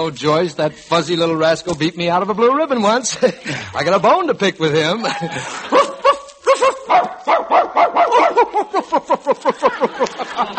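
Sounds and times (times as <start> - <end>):
speech: 0.0 - 5.9
laughter: 3.0 - 3.8, 4.9 - 6.9, 8.1 - 10.5
dog yapping in short barks: 5.7 - 8.5.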